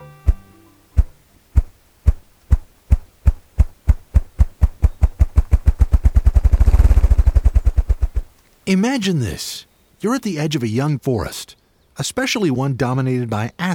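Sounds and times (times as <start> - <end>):
male ruffed grouse drumming: 0.0 - 8.4
speech: 8.7 - 13.7.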